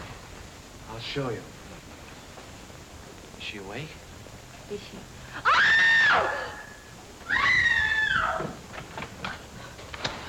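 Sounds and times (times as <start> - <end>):
speech: 0.9 - 1.6, 3.4 - 4.1, 4.7 - 6.5
long shrill screeches: 5.4 - 8.6.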